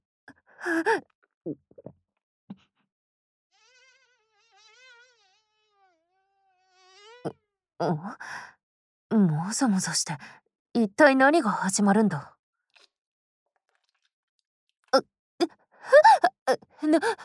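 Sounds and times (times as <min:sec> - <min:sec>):
speech: 0:00.6 - 0:01.9, 0:07.2 - 0:08.5, 0:09.1 - 0:12.4, 0:14.9 - 0:17.2
killer wasp buzzing while hovering: 0:03.5 - 0:07.4.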